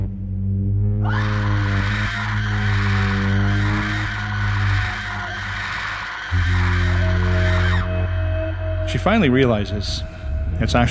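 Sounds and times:
deep hum: 0.0 - 10.9
low droning tone: 0.0 - 10.9
sustained shrill high-pitched scream: 1.0 - 8.9
speech: 9.0 - 10.9.

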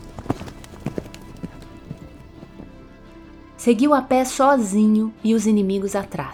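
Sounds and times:
horse hooves clip-clopping: 0.0 - 3.5
speech: 3.6 - 6.3.

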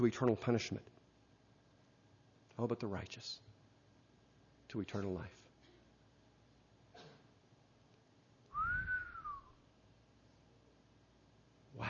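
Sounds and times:
speech: 0.0 - 1.0, 2.6 - 3.5, 4.7 - 5.4
person whistling a short clear gliding note: 8.5 - 9.6.

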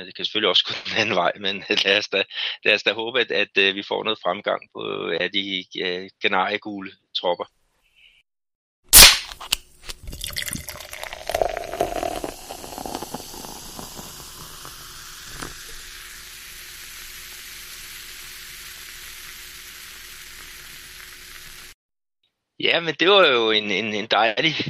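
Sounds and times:
speech: 0.0 - 7.6, 22.6 - 24.6
laughter: 0.7 - 1.3
guaraná soda can snapping open: 9.0 - 15.8
guaraná soda fizzy pouring into a glass: 9.9 - 21.8
soft steady carbonated hiss of guaraná soda: 10.0 - 21.8.

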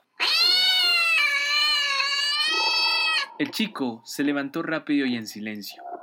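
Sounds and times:
cat meowing near a window on a cold night: 0.2 - 3.5
speech: 3.4 - 5.9.

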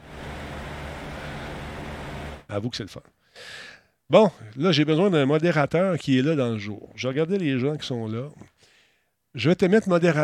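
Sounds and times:
electric fan whirring: 0.0 - 2.5
speech: 2.5 - 8.6, 9.3 - 10.2.

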